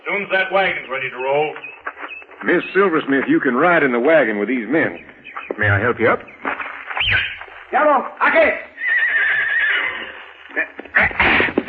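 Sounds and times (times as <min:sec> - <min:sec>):
restless shuffling of a mounted escort: 0:00.0 - 0:11.6
speech: 0:00.1 - 0:01.7, 0:02.4 - 0:06.4, 0:07.1 - 0:08.7
horse whinnying: 0:08.8 - 0:11.6.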